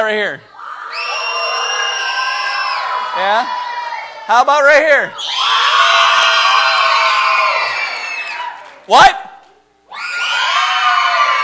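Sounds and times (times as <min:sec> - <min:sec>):
speech: 0:00.0 - 0:00.5, 0:03.2 - 0:03.6, 0:04.3 - 0:05.4, 0:08.9 - 0:09.2
large audience cheering and screaming for a singer: 0:00.6 - 0:04.3, 0:05.2 - 0:08.8, 0:09.9 - 0:11.4.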